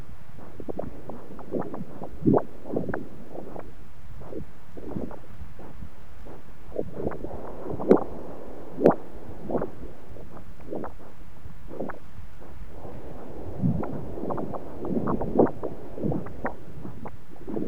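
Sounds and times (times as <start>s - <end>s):
bubbles: 0.6s - 3.7s, 6.7s - 11.1s, 12.7s - 17.6s.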